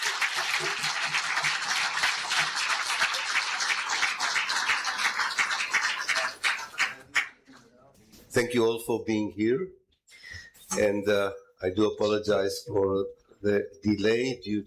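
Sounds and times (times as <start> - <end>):
audience applauding for speaker: 0.0 - 7.4
speech: 8.4 - 9.8, 10.7 - 14.6.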